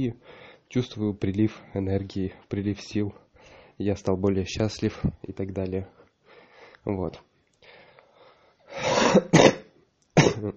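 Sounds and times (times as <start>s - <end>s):
speech: 0.0s - 3.2s, 3.8s - 6.0s, 6.8s - 7.3s, 9.1s - 9.4s
ill person coughing harshly: 8.8s - 10.5s.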